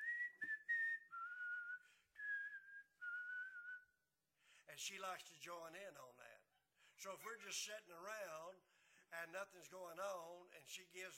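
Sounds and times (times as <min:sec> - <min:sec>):
person whistling a melody: 0:00.0 - 0:04.0
speech: 0:04.7 - 0:11.1.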